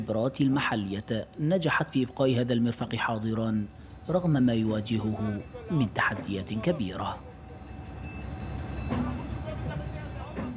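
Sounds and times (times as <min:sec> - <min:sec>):
speech: 0:00.0 - 0:07.3
train in a railway maintenance workshop rumbling and humming: 0:00.0 - 0:10.5
sharp metallic clanks: 0:08.7 - 0:10.5.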